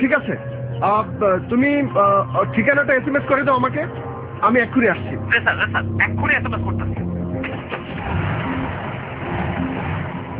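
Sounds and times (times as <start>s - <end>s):
speech: 0.1s - 7.0s
police officer's car engine driving off at speed: 7.4s - 10.3s.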